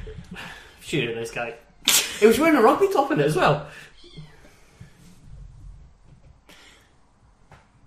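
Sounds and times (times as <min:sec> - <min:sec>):
speech: 0:00.1 - 0:04.3
cat meowing: 0:04.0 - 0:04.5.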